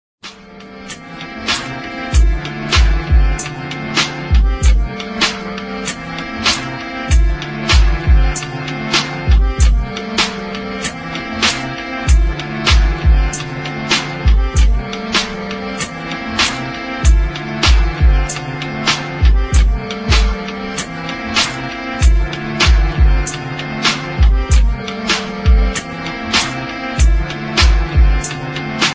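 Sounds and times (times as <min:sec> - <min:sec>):
accordion instrumental ringtone on iPhone 7 Plus: 0:00.5 - 0:28.9.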